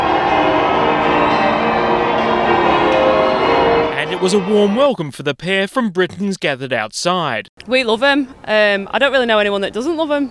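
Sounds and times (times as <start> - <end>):
cathedral bells pealing: 0.0 - 4.8
speech: 4.2 - 10.3.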